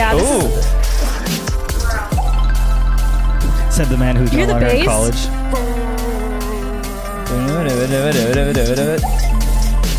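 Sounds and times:
steady low bass: 0.0 - 9.9
bubbly water-drop-like synth plucks sliding in pitch: 2.1 - 3.4, 9.0 - 9.5
speech: 3.8 - 5.9, 7.3 - 9.4.

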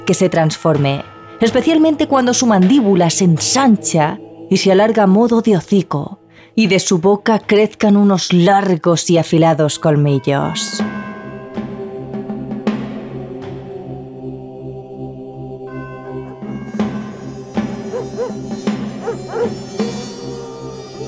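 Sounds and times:
speech: 0.1 - 11.0
several dogs howling and whining: 17.7 - 21.0.

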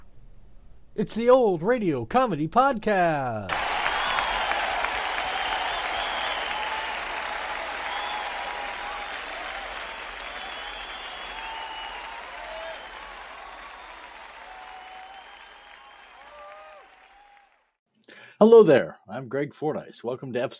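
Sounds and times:
speech: 1.0 - 3.7, 18.4 - 20.5
live studio audience applauding: 3.5 - 17.8.

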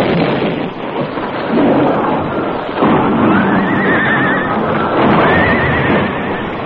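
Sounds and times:
explosive charge blasting beneath a bridge: 0.0 - 6.6
horses on a bridge neighing: 2.0 - 6.6.

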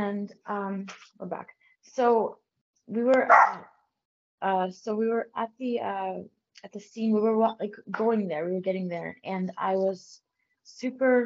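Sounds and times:
speech: 0.1 - 3.8, 4.4 - 11.2
dog barking at someone walking by at the door: 3.3 - 3.7.

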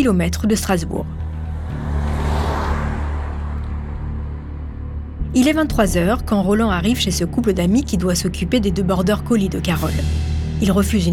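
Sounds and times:
speech: 0.0 - 1.8, 5.3 - 11.1
car engine rumbling as the car pulls away toward Blasheim: 1.0 - 5.7.

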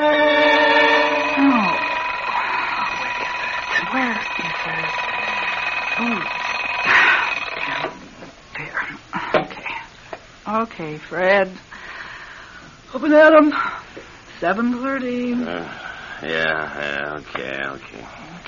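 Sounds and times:
alarm clock ringing: 0.0 - 8.1
speech: 10.8 - 11.7, 12.9 - 13.7, 14.4 - 18.4.

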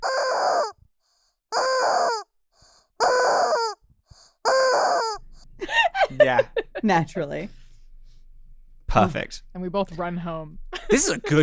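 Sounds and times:
rubber chicken squeezed and squawking: 0.0 - 0.8, 1.5 - 2.3, 3.0 - 3.8, 4.4 - 5.2
laughter: 5.6 - 7.0, 10.8 - 11.4
speech: 6.2 - 7.6, 8.9 - 11.4.

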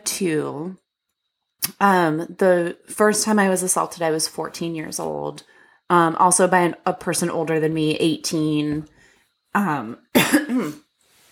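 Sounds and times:
speech: 0.2 - 0.8, 1.6 - 10.8
coughing into a microphone: 10.1 - 10.8.

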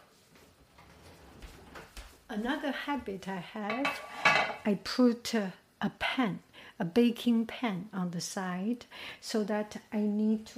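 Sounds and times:
speech: 2.4 - 10.5
metal utensil scraping and clanking against a cooking pot while cleaning it: 3.7 - 4.7.

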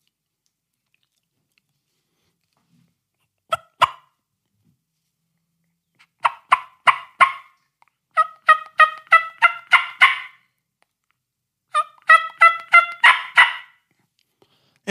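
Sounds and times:
turkey clucks made on a mouth call: 3.5 - 4.2, 6.0 - 10.4, 11.7 - 13.8.

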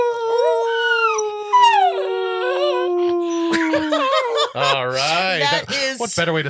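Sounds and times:
dog yips and whimpers: 0.0 - 2.1
dog howling in a long wavering tone: 0.0 - 4.2
laughter: 3.4 - 6.0
speech: 5.5 - 6.4.

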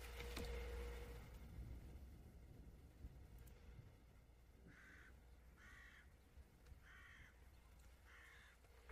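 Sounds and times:
low rumble: 0.0 - 8.0
crow cawing: 4.7 - 6.2, 6.8 - 7.4, 8.0 - 8.7.

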